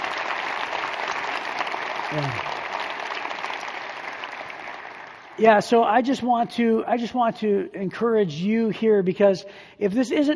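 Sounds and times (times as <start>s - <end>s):
crowd applauding: 0.0s - 5.7s
speech: 2.1s - 2.6s, 5.4s - 10.3s.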